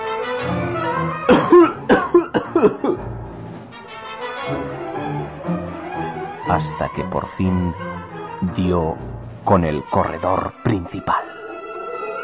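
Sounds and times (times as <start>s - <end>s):
faint tonal music: 0.0s - 12.2s
person coughing harshly: 1.3s - 3.0s
speech: 2.6s - 2.9s, 6.6s - 11.3s.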